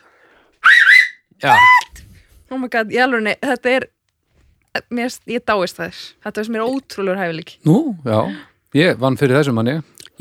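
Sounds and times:
loud whistling with fingers in the mouth: 0.6 - 1.9
speech: 1.4 - 1.7, 2.6 - 4.0, 4.7 - 10.1.

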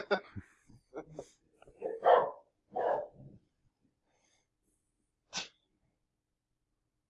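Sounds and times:
dog barking: 1.7 - 3.3.

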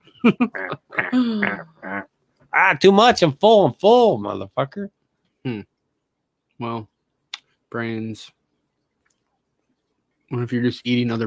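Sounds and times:
speech: 0.2 - 1.7, 2.7 - 5.7, 6.6 - 6.9, 7.7 - 8.4, 10.3 - 11.2
person imitating duck quacks: 0.5 - 2.2.

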